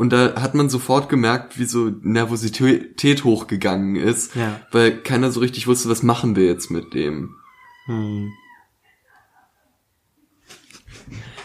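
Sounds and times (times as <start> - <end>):
speech: 0.0 - 8.4
cats at home squeaking and mewing to be let outside: 3.7 - 9.6.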